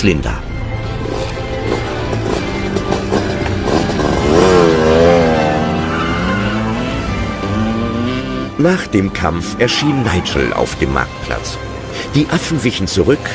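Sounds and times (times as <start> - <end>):
speech: 0.0 - 0.5, 8.6 - 13.3
motorcycle engine revving: 0.8 - 8.8.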